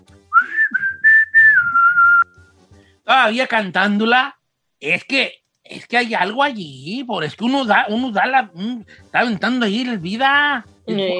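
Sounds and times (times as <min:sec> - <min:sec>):
person whistling a short melodic phrase: 0:00.3 - 0:02.5
speech: 0:03.1 - 0:11.1.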